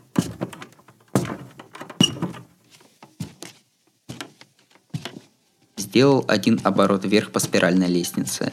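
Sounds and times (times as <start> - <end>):
old dilapidated wooden door opening and closing with hollow thuds, knocks and rattles: 0.0 - 2.6
speech: 6.0 - 8.5.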